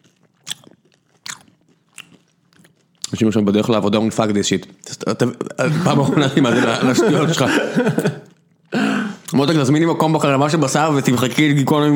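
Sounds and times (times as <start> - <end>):
crisp bites into pineapple fingers with burnt sugar, chili and lime: 0.0 - 3.2
chewing pineapple fingers: 0.0 - 3.3, 8.0 - 9.4
speech: 3.1 - 8.2, 9.4 - 11.9
laughter: 5.5 - 8.4.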